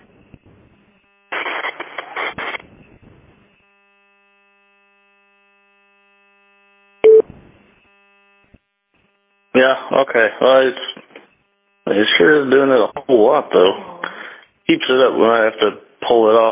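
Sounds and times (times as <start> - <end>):
loud sharp beep: 7.0 - 7.2
speech: 9.6 - 11.0, 11.9 - 13.9, 14.7 - 16.5.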